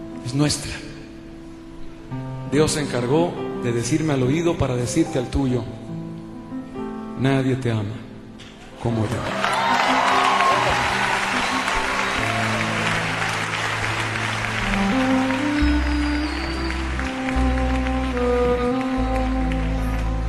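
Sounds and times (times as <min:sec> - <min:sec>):
soft held keyboard chords: 0:00.0 - 0:20.2
speech: 0:00.2 - 0:00.9, 0:02.1 - 0:05.8, 0:07.2 - 0:08.0, 0:08.8 - 0:09.4
audience applauding: 0:09.1 - 0:20.2.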